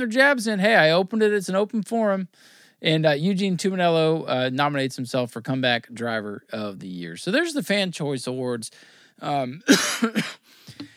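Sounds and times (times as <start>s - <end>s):
speech: 0.0s - 10.9s
person clearing throat: 9.6s - 10.4s
person coughing: 9.6s - 10.5s.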